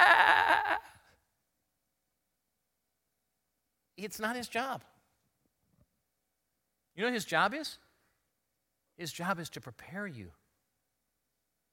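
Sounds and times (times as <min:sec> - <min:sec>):
person imitating a sheep with a wavering nasal bleat: 0:00.0 - 0:00.9
speech: 0:04.0 - 0:05.0, 0:07.0 - 0:07.8, 0:09.0 - 0:10.4.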